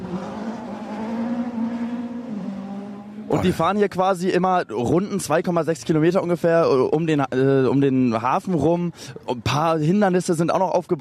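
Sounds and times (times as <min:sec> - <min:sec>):
rally car engine roaring as it pulls away from the start: 0:00.0 - 0:04.0
speech: 0:03.3 - 0:10.9.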